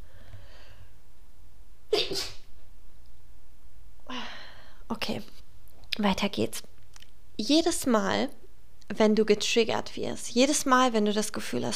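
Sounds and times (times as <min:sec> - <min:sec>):
person sneezing: 0:01.9 - 0:02.5
speech: 0:02.1 - 0:02.4, 0:04.9 - 0:05.4, 0:06.0 - 0:06.7, 0:07.4 - 0:11.7.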